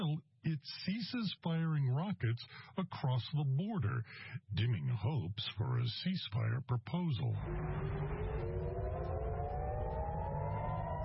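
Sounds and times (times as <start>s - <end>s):
speech: 0.1s - 8.5s
air raid sirens wailing: 7.3s - 11.0s
steady low rumble: 7.3s - 11.0s.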